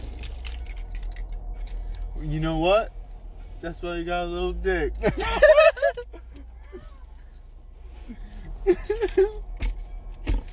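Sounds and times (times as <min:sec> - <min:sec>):
keys jangling as they are handed over: 0:00.0 - 0:02.1, 0:08.7 - 0:09.8
low hum: 0:00.0 - 0:10.5
speech: 0:02.2 - 0:03.0, 0:03.6 - 0:06.1
laughter: 0:05.0 - 0:06.8.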